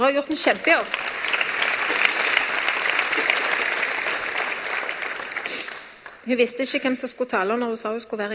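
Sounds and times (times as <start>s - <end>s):
speech: 0.0s - 2.0s, 6.3s - 8.3s
audience applause: 0.0s - 6.3s.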